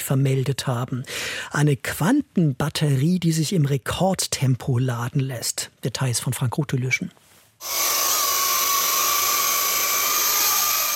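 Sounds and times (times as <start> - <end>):
speech: 0.1 - 8.1
drone propellers buzzing while hovering in the air: 7.6 - 10.9.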